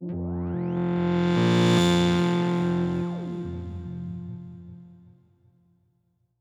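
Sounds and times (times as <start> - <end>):
FM analog synthesizer effects: 0.0 - 5.0.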